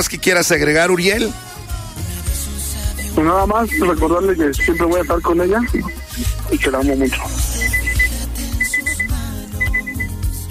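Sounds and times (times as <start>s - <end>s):
speech: 0.0s - 1.5s, 3.2s - 7.8s
electronic alarm reminder beeping: 2.9s - 10.2s.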